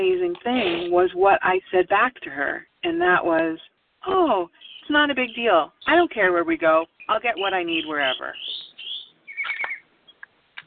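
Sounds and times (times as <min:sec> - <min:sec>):
speech: 0:00.0 - 0:08.6
birds chirping and tweeting: 0:04.2 - 0:10.3.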